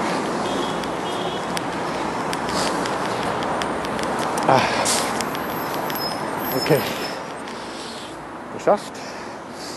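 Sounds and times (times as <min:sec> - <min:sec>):
dense street traffic: 0:00.0 - 0:09.7
speech: 0:04.5 - 0:05.0, 0:06.6 - 0:07.0, 0:08.6 - 0:09.1
faint repeating high beep: 0:05.9 - 0:07.3.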